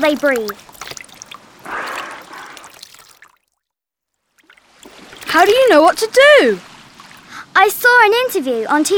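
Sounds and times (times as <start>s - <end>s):
speech: 0.0s - 0.7s, 5.4s - 6.7s, 7.6s - 8.9s
water poured onto a dolphin stranded on a beach: 0.0s - 3.6s, 4.2s - 7.4s.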